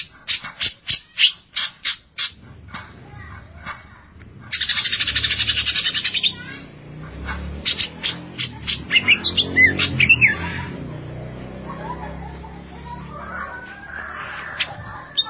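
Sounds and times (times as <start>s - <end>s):
leafbird chattering notes and whistled slurs: 0.0s - 2.4s, 4.5s - 10.7s, 14.5s - 15.2s
laughter: 10.3s - 15.2s.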